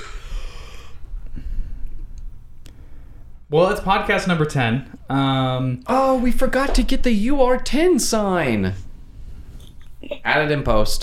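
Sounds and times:
person deliberately breathing loudly: 0.0s - 2.0s
speech: 3.5s - 8.8s, 10.2s - 11.0s.

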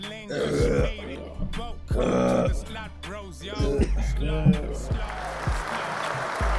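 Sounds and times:
people burping after chugging drinks: 0.0s - 2.8s, 3.5s - 5.0s
people laughing: 3.7s - 6.5s.

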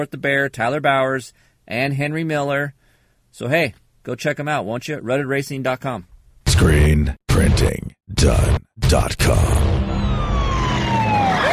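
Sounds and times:
speech: 0.0s - 9.9s
police siren wailing: 9.6s - 11.5s.

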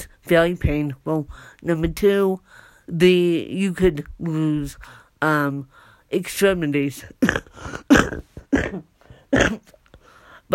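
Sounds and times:
speech: 0.3s - 9.8s
person coughing: 7.2s - 9.8s.

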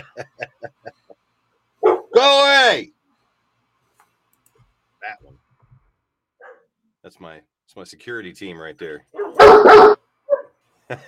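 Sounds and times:
laughter: 0.0s - 1.2s, 10.9s - 11.0s
speech: 0.2s - 0.5s, 7.1s - 10.0s, 10.9s - 11.0s
dog barking sharp yaps in the studio next door: 1.8s - 2.2s, 6.4s - 6.7s, 9.2s - 10.6s.

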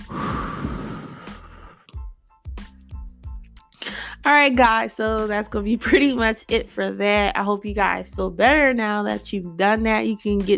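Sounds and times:
person breathing in and out deeply during a guided relaxation exercise: 0.0s - 1.9s
short voiced sighing exhalations: 0.0s - 2.0s, 3.7s - 4.2s
speech: 4.2s - 10.5s.

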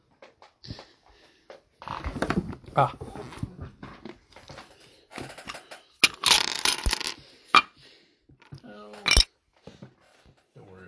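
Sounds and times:
speech: 2.8s - 3.1s
dice clattering across a hard tabletop: 5.2s - 7.7s, 8.4s - 9.3s.

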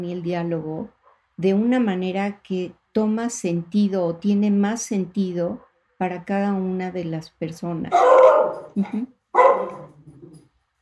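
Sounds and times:
speech: 0.0s - 9.8s
faint noise: 0.0s - 10.8s
dog barking: 7.9s - 10.4s.

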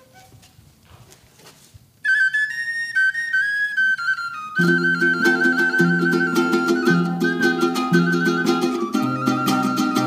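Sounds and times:
shrill wind-instrument melody of traditional music: 2.0s - 10.0s
speech: 4.6s - 5.4s.

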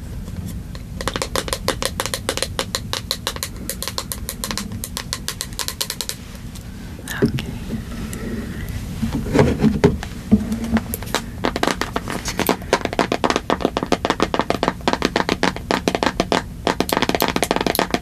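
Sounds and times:
low steady hum: 0.0s - 18.0s
fast aggressive tapping: 0.8s - 6.2s, 9.1s - 18.0s.

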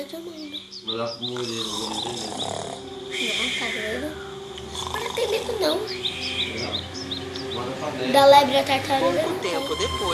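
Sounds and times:
speech: 0.0s - 10.1s
voice imitating a sleeping wolf snoring: 1.3s - 2.9s, 4.7s - 5.8s.

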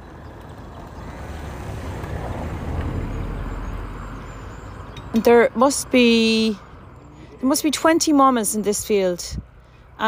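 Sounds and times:
car passing along a quiet rural road beside a field of sheep: 0.0s - 5.1s
speech: 5.2s - 6.7s, 7.4s - 9.4s.

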